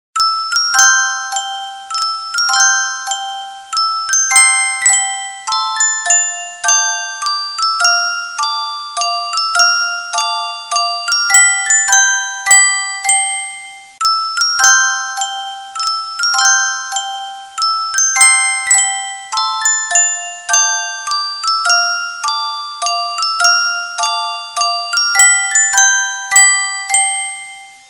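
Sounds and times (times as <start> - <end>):
music box: 0.2 - 27.8.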